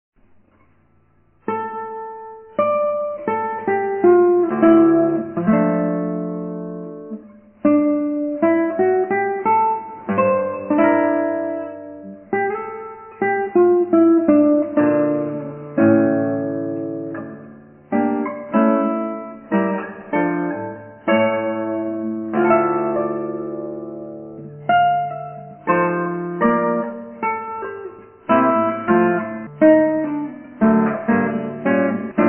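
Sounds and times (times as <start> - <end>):
guitar: 0.2 - 32.2.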